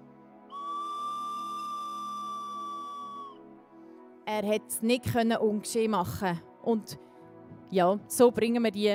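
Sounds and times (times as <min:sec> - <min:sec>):
whistle blown in a long steady blast: 0:00.5 - 0:03.4
speech: 0:04.3 - 0:07.1, 0:07.7 - 0:08.9.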